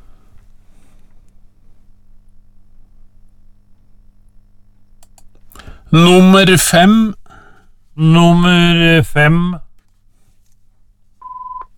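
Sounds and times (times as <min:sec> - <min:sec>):
faint low hum: 0:00.0 - 0:11.7
speech: 0:05.9 - 0:07.2, 0:08.0 - 0:09.6
telephone ringing on the line: 0:11.2 - 0:11.7.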